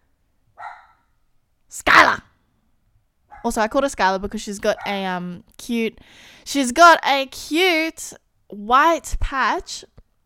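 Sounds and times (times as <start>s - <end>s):
puppy barking: 0.6s - 1.1s, 3.3s - 3.5s
speech: 3.4s - 9.9s.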